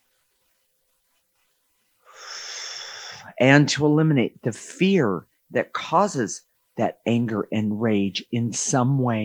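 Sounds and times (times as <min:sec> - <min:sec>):
deep breath drawn in: 0:02.0 - 0:03.3
speech: 0:03.4 - 0:09.2.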